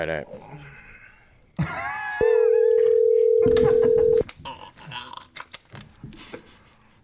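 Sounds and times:
phone call ringing without being answered: 2.2s - 4.2s.

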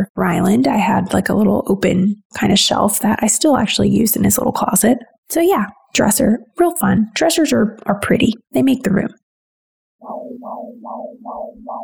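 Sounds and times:
speech: 0.0s - 9.2s
stylized synthesized heartbeat effect: 10.0s - 11.8s.

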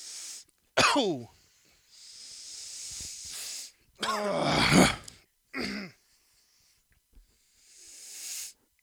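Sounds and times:
speech: 0.9s - 1.4s, 4.0s - 5.0s
person groaning and grunting: 4.0s - 5.1s
person snorting a line up the nose: 4.1s - 5.2s.

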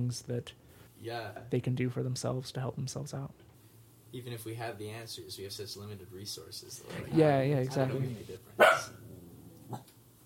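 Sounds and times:
speech: 0.0s - 3.5s, 4.1s - 9.0s
dog barking: 8.6s - 9.0s.

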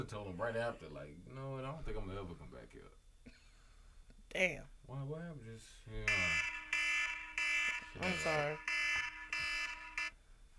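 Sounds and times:
speech: 0.0s - 3.4s, 4.3s - 6.6s, 8.0s - 8.8s
alarm blaring in harsh buzzy bursts: 6.0s - 10.2s.

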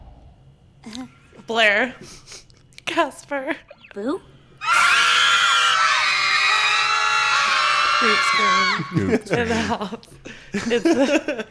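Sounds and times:
speech: 0.8s - 4.3s, 8.0s - 11.4s
group of people screaming together: 4.6s - 9.1s
people shouting and yelping: 4.6s - 9.3s
laughter: 7.3s - 11.4s.

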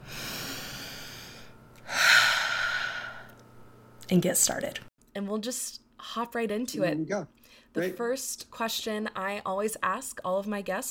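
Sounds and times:
deep human breath: 0.0s - 3.4s
speech: 4.1s - 10.8s.

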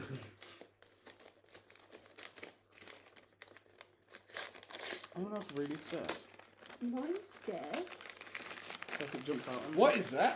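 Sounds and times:
wrapping paper crinkling and ripping as a gift is opened: 0.0s - 10.3s
speech: 5.2s - 8.1s, 9.0s - 10.3s.

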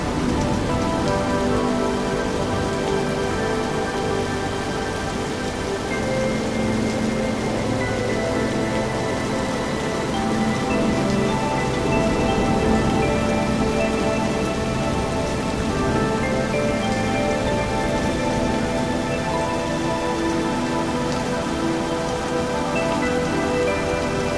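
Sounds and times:
gentle music with long sustained tones: 0.0s - 24.3s
steady rain pattering on a surface: 0.0s - 24.3s.

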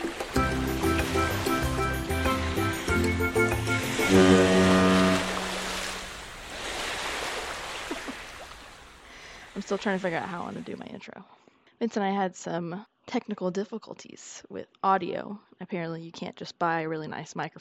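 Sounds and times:
ocean waves: 0.0s - 10.8s
deep boat horn blasts: 0.8s - 6.4s
speech: 4.1s - 4.7s, 9.7s - 17.5s.

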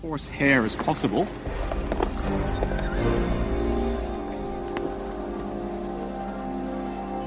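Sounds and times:
ridden horse hooves clip-clopping: 0.6s - 7.2s
horse whinnying loudly: 1.3s - 6.6s.

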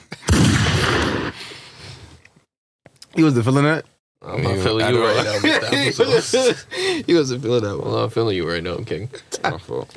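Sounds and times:
loud gunshot sound effect with booming blast: 0.2s - 1.5s
speech: 3.2s - 9.9s
laughter: 4.8s - 7.0s.

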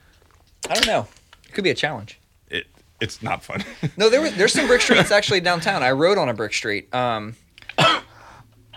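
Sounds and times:
speech: 0.7s - 7.4s
laughter: 3.0s - 5.8s
person coughing with a rasping trail: 7.7s - 8.2s.

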